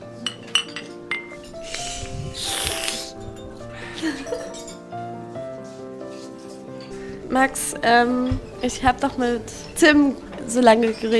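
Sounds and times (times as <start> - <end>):
glass and ceramic cups clinking in a toast: 0.2 - 1.6, 4.0 - 4.9
speech: 4.0 - 4.6, 7.3 - 11.1.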